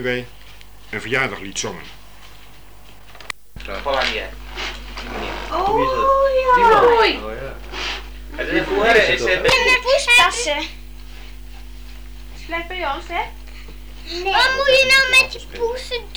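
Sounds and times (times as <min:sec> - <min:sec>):
speech: 0:00.0 - 0:02.0, 0:03.7 - 0:04.4, 0:05.0 - 0:07.7, 0:08.4 - 0:10.8, 0:12.5 - 0:13.4, 0:14.1 - 0:16.1
talking: 0:00.0 - 0:16.1
laughter: 0:03.6 - 0:16.1
cat meowing: 0:05.0 - 0:07.4.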